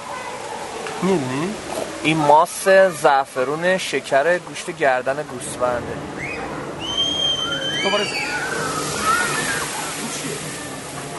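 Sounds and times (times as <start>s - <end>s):
speech: 1.0s - 6.4s, 7.8s - 8.3s
water emptying from a bucket: 8.1s - 10.6s.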